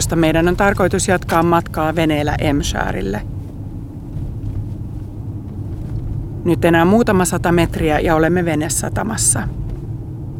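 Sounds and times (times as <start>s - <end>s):
speech: 0.0s - 3.4s, 6.4s - 9.6s
car engine and road rumble while driving on a sunny day: 0.0s - 10.3s.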